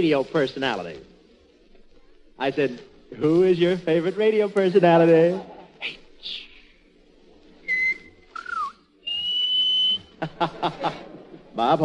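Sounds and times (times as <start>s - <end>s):
speech: 0.0s - 1.1s, 2.4s - 6.5s, 10.2s - 11.8s
person whistling: 7.6s - 10.1s
laughter: 9.9s - 11.8s.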